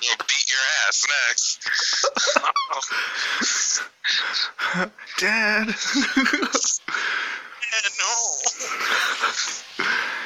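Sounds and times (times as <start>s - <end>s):
speech: 0.0s - 10.2s
laughter: 1.6s - 5.0s, 5.6s - 6.9s, 8.6s - 10.2s
heavy breathing into microphone: 2.8s - 4.9s, 6.8s - 7.6s, 8.6s - 10.2s.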